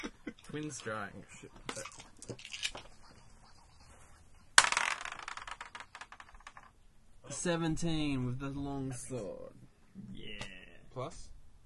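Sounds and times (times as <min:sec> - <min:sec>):
speech: 0:00.5 - 0:02.6, 0:07.4 - 0:10.4, 0:11.0 - 0:11.3
dice rolled for an attack in a tabletop game clattering on a hard tabletop: 0:04.6 - 0:06.8.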